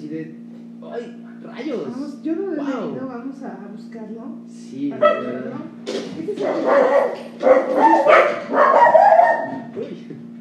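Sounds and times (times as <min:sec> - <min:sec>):
speech: 0:00.1 - 0:09.0
several dogs barking excitedly at a passing dog: 0:05.0 - 0:05.5, 0:06.3 - 0:09.8.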